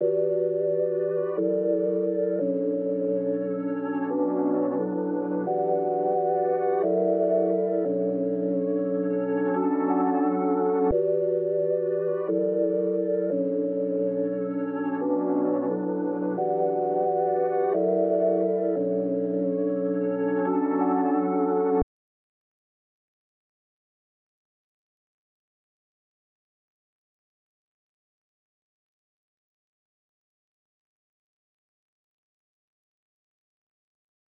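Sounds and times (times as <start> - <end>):
synth pad melody loop in B minor: 0.0 - 21.8.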